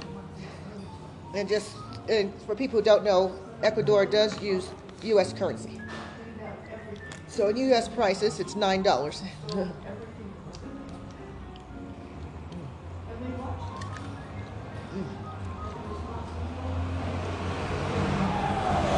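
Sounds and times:
general traffic noise on a busy street in Ecuador: 0.0s - 18.9s
speech: 1.3s - 5.9s, 7.4s - 10.1s
city bus engine drone on a busy street in Ecuador: 13.8s - 18.9s.

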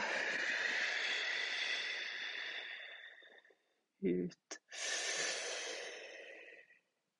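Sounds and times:
long deep breath close to the microphone: 0.0s - 3.6s, 4.7s - 6.9s
speech: 4.0s - 4.5s.

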